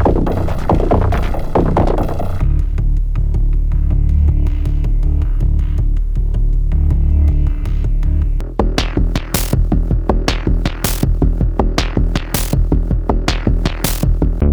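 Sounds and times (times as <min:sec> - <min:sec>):
low pulses: 0:00.2 - 0:14.4.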